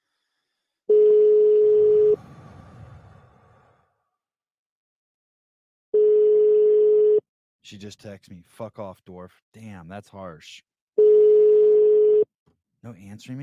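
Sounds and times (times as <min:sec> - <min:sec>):
European-style telephone ringing tone: 0:00.9 - 0:02.2, 0:06.0 - 0:07.2, 0:11.0 - 0:12.3
speech: 0:07.7 - 0:10.7, 0:12.8 - 0:13.4.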